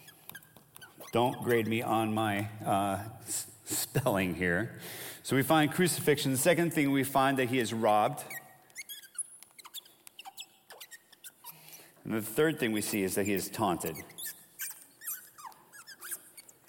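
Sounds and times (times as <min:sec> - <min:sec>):
marker squeaking on a whiteboard: 0:00.0 - 0:03.9, 0:07.4 - 0:16.6
speech: 0:01.1 - 0:08.3, 0:12.1 - 0:14.2.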